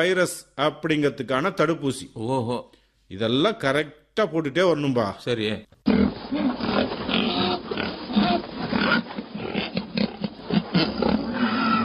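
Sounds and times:
speech: 0:00.0 - 0:06.2
herd of white pigs on a farm grunting and snorting: 0:05.8 - 0:11.8.

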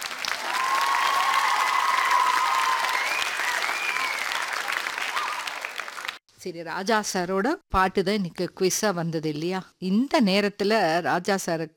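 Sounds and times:
crowd applauding: 0:00.0 - 0:06.2
speech: 0:06.4 - 0:11.7.

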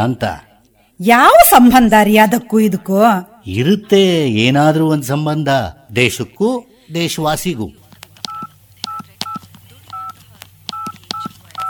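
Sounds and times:
speech: 0:00.0 - 0:07.8
telephone keypad dialing tones at home: 0:08.2 - 0:11.6.

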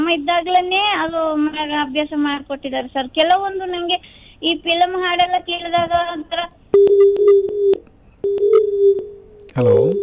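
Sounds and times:
speech: 0:00.1 - 0:10.0
telephone tone after a dropped phone connection: 0:06.8 - 0:10.0.

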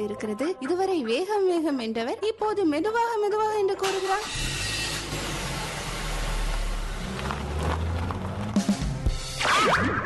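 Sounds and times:
speech: 0:00.0 - 0:04.6
car engine rumbling as the vehicle drives off: 0:04.0 - 0:09.4.

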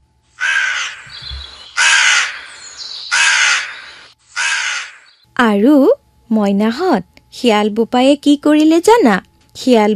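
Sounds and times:
crow cawing: 0:00.4 - 0:05.2
speech: 0:05.4 - 0:09.9.

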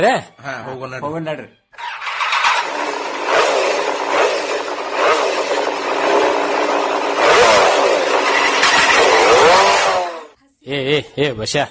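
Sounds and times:
speech: 0:00.0 - 0:01.9, 0:10.6 - 0:11.6
new motorcycle engine revving hard: 0:01.8 - 0:10.4.

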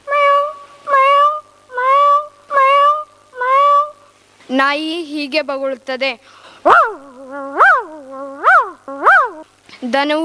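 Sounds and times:
human voice imitating a cat meowing in a mimicry act: 0:00.0 - 0:04.1, 0:06.7 - 0:09.5
speech: 0:04.5 - 0:06.4, 0:09.8 - 0:10.2.

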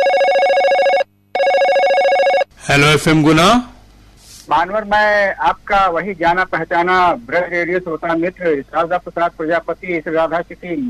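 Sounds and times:
telephone ringing with a steady trilling bell tone for incoming call: 0:00.0 - 0:02.5
speech: 0:02.7 - 0:03.7, 0:04.5 - 0:10.8.

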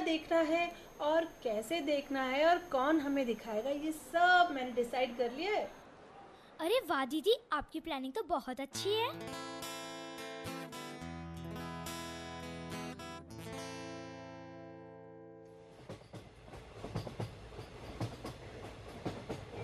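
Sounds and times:
speech: 0:00.1 - 0:05.8, 0:06.6 - 0:09.5
train running on rails: 0:15.6 - 0:19.6.

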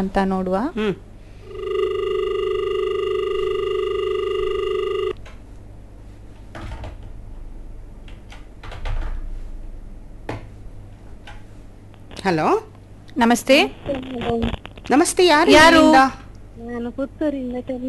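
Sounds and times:
speech: 0:00.0 - 0:01.1, 0:12.2 - 0:16.2, 0:16.8 - 0:17.8
steady telephone tone for an incoming call: 0:01.4 - 0:05.2.

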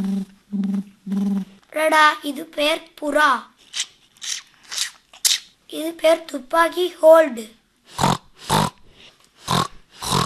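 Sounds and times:
speech: 0:01.8 - 0:03.9, 0:05.7 - 0:07.6
pig grunting: 0:07.9 - 0:08.8, 0:09.4 - 0:10.2.

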